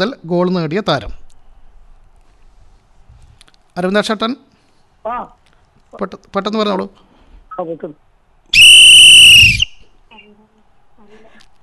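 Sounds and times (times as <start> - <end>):
speech: 0.0 - 1.2, 3.8 - 8.6
referee-style whistle blown to signal time is up in a football quiz: 8.5 - 9.9.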